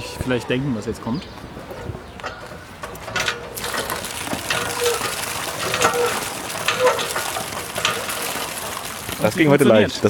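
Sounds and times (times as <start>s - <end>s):
speech: 0.2s - 1.6s, 9.2s - 10.0s
water sloshing and splashing as it is scooped from a hollow at a crossroads: 3.1s - 10.0s.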